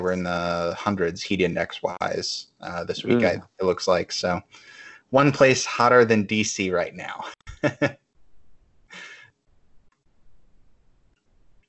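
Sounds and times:
speech: 0:00.0 - 0:08.0
faint low rumbles: 0:00.0 - 0:11.6
laughter: 0:00.1 - 0:04.4, 0:06.8 - 0:07.9, 0:09.0 - 0:09.2
person yawning: 0:02.8 - 0:03.4.

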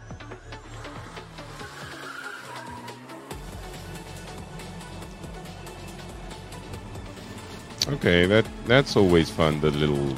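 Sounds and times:
tires squealing and skidding in drifting slides: 0:00.0 - 0:07.7
small cars in a racing video game roaring: 0:00.0 - 0:10.1
speech: 0:07.9 - 0:10.1.

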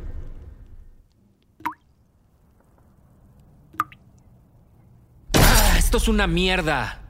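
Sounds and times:
quiet low hum: 0:00.0 - 0:07.0
water dripping into a sink: 0:01.6 - 0:01.9, 0:03.8 - 0:04.1
speech: 0:05.9 - 0:07.0.

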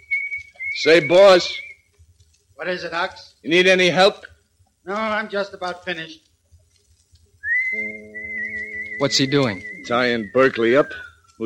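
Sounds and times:
person whistling a tune: 0:00.0 - 0:01.8, 0:07.4 - 0:11.4
speech: 0:00.8 - 0:01.6, 0:02.6 - 0:06.3, 0:09.0 - 0:11.4
low humming tone: 0:07.6 - 0:10.4.

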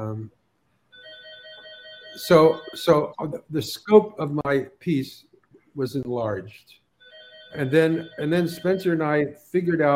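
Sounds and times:
speech: 0:00.0 - 0:00.4, 0:02.2 - 0:06.8, 0:07.5 - 0:09.9
telephone ringing with an electronic warble: 0:00.9 - 0:03.0, 0:07.0 - 0:09.2.

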